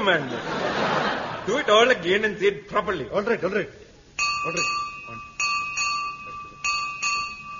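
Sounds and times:
laughter: 0:00.0 - 0:01.8
speech: 0:00.0 - 0:03.8, 0:04.4 - 0:05.2
single bell struck with sustained metallic tone: 0:04.2 - 0:07.5.

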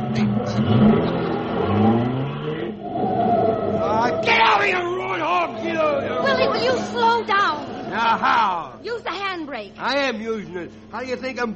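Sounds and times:
car engine starting and revving as it accelerates: 0:00.0 - 0:09.0
speech: 0:09.6 - 0:11.5.

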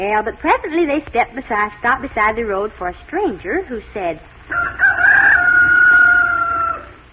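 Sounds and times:
speech: 0:00.0 - 0:04.8
rooster crowing: 0:04.5 - 0:07.1.

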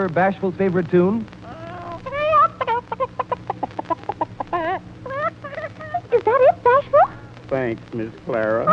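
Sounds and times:
speech: 0:00.0 - 0:01.4, 0:07.5 - 0:08.7
voice imitating a hen clucking: 0:01.5 - 0:06.1.

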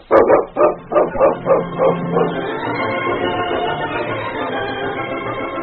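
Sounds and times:
dog barking: 0:00.0 - 0:03.9
dense sound: 0:00.0 - 0:05.5.

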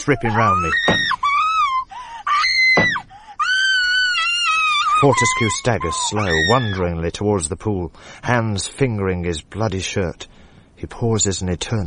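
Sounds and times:
speech: 0:00.0 - 0:01.0, 0:05.0 - 0:11.8
girl screaming: 0:00.0 - 0:06.8.

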